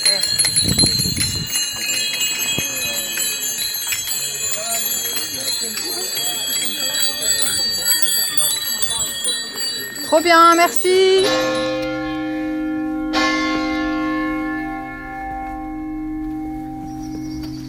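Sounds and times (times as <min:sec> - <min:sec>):
voices murmuring: 0:00.0 - 0:11.7
bright shimmering bell ringing: 0:00.0 - 0:17.4
speech: 0:10.2 - 0:11.7.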